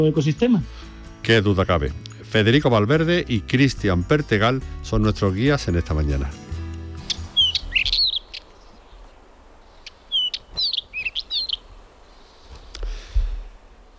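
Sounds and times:
speech: 0:00.0 - 0:06.4
black wheatear singing outdoors: 0:07.0 - 0:11.7.

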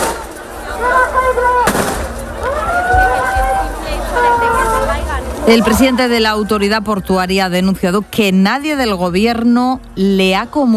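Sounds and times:
noisy crowd with shouting voices: 0:00.0 - 0:07.0
police gunshot fired into the air: 0:01.7 - 0:02.1
drawn-out cries or whistles: 0:02.4 - 0:07.2
speech: 0:05.5 - 0:10.7.

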